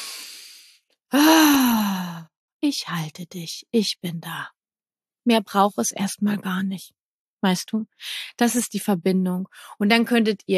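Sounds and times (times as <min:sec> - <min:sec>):
loud sustained voiced gasp with a falling tone: 0:00.0 - 0:02.2
person breathing in deeply during a calming moment with a child: 0:00.0 - 0:02.2
speech: 0:02.7 - 0:04.6, 0:05.2 - 0:10.5.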